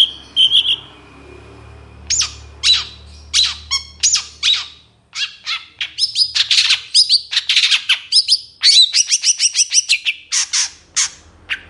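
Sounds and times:
Long-tailed shrike song of grating notes, whistles and upslurred chirps: 0.0 - 11.6.

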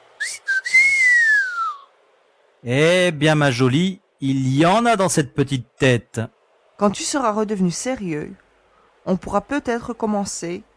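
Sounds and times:
young man giving an admiring whistle: 0.2 - 1.9
speech: 2.6 - 8.4, 9.0 - 10.7.

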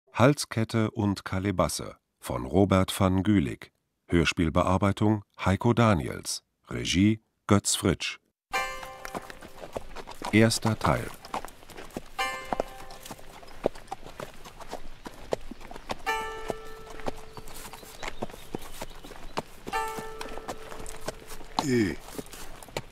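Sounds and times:
speech: 0.2 - 8.2, 10.3 - 11.2, 21.6 - 22.2
ridden horse hooves clip-clopping at a walk under drizzle: 8.5 - 22.9.

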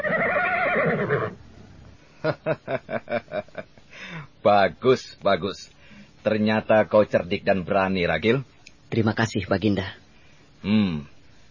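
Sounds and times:
flying horse from a folk tale neighing: 0.0 - 1.4
speech: 1.0 - 1.4, 2.2 - 10.0, 10.6 - 11.1.

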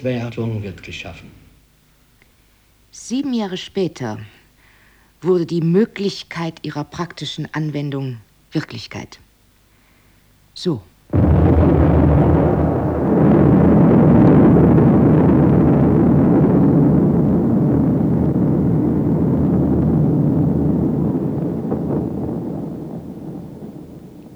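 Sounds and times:
speech: 0.0 - 1.4, 2.9 - 4.4, 5.2 - 9.2, 10.6 - 11.8
deep sustained roar of an atomic bomb explosion: 11.1 - 24.3.

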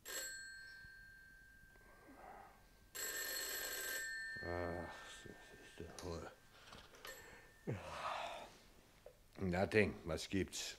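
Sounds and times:
telephone ringing with a metallic bell tone: 0.0 - 1.8, 2.9 - 5.6
speech: 4.5 - 6.4, 7.6 - 8.0, 9.4 - 10.7.

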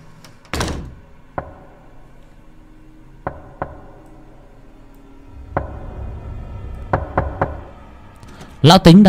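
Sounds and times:
knocking on a door at night: 1.4 - 1.7, 3.2 - 4.0, 5.4 - 7.9.

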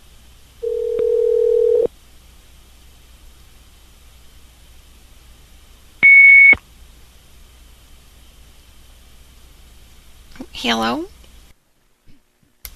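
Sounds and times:
short loud higher-pitched voicemail recording beep: 0.6 - 1.9, 6.0 - 6.6
steady lower-pitched phone call tone: 0.6 - 1.9
speech: 10.6 - 11.1.

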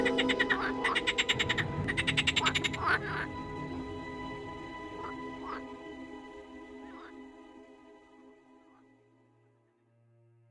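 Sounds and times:
many frogs croaking in a village in late August: 0.0 - 7.3.

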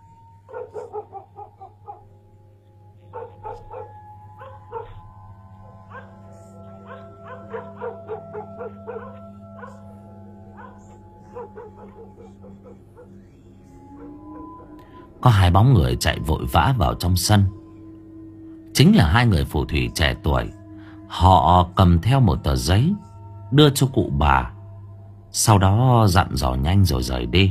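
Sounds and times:
village dogs barking wildly: 0.5 - 2.1, 3.1 - 5.0, 5.6 - 13.2
speech: 15.2 - 17.6, 18.8 - 24.6, 25.3 - 27.4.

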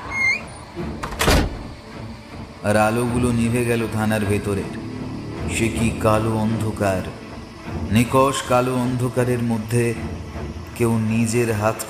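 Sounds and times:
police station outer door slamming shut: 1.0 - 1.8
speech: 2.6 - 4.9, 5.5 - 11.8.

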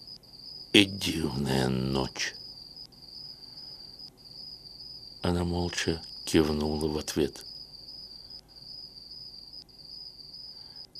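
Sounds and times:
cicadas chirping at night by the sea: 0.0 - 10.9
speech: 0.7 - 2.4, 5.2 - 7.5.

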